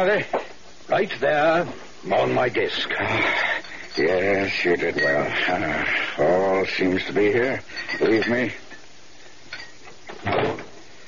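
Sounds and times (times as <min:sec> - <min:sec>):
speech: 0:00.0 - 0:08.6
door shutting: 0:10.1 - 0:10.8.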